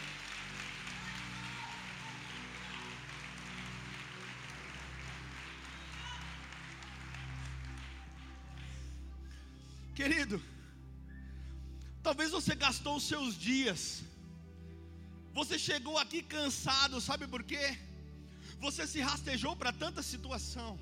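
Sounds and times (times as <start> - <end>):
low sustained musical tone: 0.0 - 1.4, 2.1 - 20.8
audience applauding in praise of Jesus: 0.0 - 9.0
speech: 10.0 - 10.6, 12.1 - 14.1, 15.4 - 20.8.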